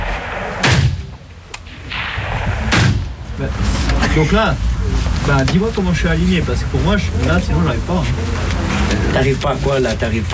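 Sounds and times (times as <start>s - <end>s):
sharp faint gunshot crack at a shooting range: 0.0s - 3.2s
heavy booming gunshots at a shooting range: 0.0s - 3.9s
constant noise: 0.0s - 10.3s
speech: 3.4s - 8.5s, 9.2s - 10.3s.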